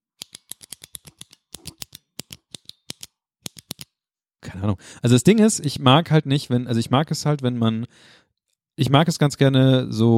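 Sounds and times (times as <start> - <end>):
ballpoint pen clicking: 0.2 - 4.0
speech: 4.5 - 8.2, 8.8 - 10.1.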